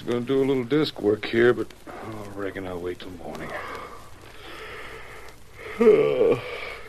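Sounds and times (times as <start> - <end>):
speech: 0.1 - 3.7, 5.8 - 6.6
man letting out a drawn-out voiced yawn: 5.6 - 6.8.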